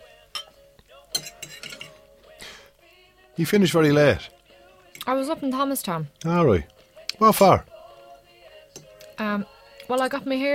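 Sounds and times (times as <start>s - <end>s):
two wine glasses clinking in a toast: 0.4s - 2.0s
speech: 3.4s - 4.4s, 5.0s - 7.7s, 9.2s - 10.5s.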